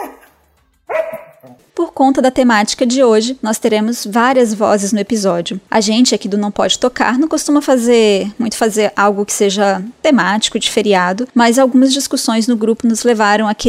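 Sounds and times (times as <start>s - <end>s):
dog barking in drawn-out yowling bursts: 0.9s - 1.6s
speech: 2.1s - 13.6s.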